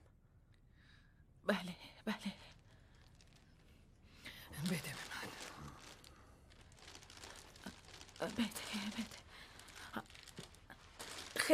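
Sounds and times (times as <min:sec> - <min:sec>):
speech: 0:01.5 - 0:02.3
very shiny gift wrapping paper crinkling and rustling: 0:02.5 - 0:11.5.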